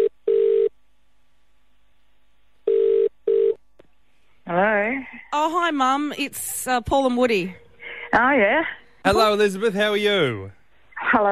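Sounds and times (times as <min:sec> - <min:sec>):
outgoing telephone ringing tone: 0:00.0 - 0:00.7, 0:02.7 - 0:03.6
speech: 0:05.4 - 0:11.3.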